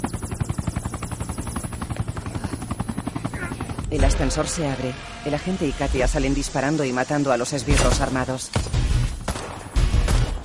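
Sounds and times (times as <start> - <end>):
helicopter engine whine: 0.0 - 8.3
helicopter rotor blades beating on a building's rooftop helipad: 0.0 - 10.4
speech: 3.9 - 8.8.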